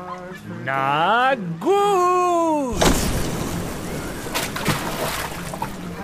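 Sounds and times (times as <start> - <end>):
speech: 0.4 - 2.8
water splashing from cannonball jump into lake: 2.7 - 6.0.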